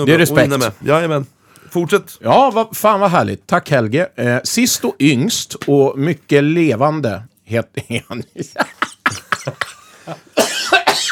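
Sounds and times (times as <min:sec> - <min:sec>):
speech: 0:00.0 - 0:11.1
laughter: 0:07.8 - 0:10.4
coughing fit of short rasping coughs: 0:09.2 - 0:11.1.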